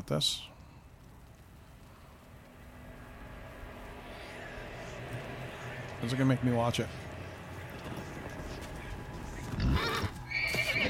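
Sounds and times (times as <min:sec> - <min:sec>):
speech: 0:00.0 - 0:00.5, 0:06.0 - 0:07.0
horse neighing: 0:09.6 - 0:10.8.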